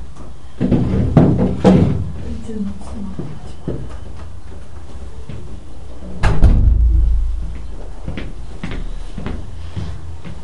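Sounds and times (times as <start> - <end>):
faint hum: 0.0 - 10.4
speech: 2.5 - 3.5
dull thuds of a door being shut: 6.2 - 7.6.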